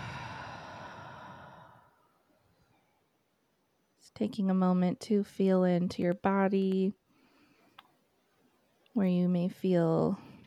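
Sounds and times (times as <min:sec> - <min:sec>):
big exhale during a guided breathing exercise: 0:00.0 - 0:02.0
speech: 0:04.0 - 0:07.0, 0:09.0 - 0:10.2.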